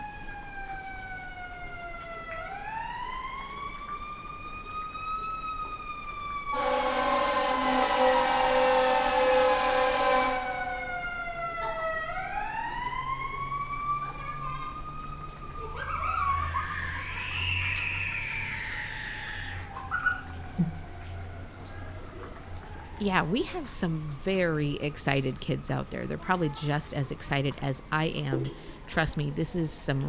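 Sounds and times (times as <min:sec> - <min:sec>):
faint street noise: 0:00.0 - 0:30.0
fire truck siren wailing down a street near a fire station: 0:00.0 - 0:30.0
loud blaring fire truck horn blast: 0:06.5 - 0:10.6
speech: 0:23.0 - 0:30.0.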